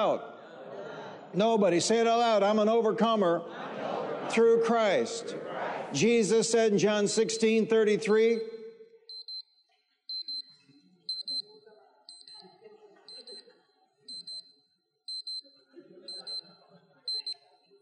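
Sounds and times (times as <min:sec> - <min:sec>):
speech: 0:00.0 - 0:00.4, 0:01.3 - 0:08.5
laughter: 0:00.0 - 0:07.3, 0:12.3 - 0:14.4, 0:15.6 - 0:17.4
alarm beeping in high-pitched pulses: 0:07.2 - 0:13.5, 0:14.1 - 0:17.8.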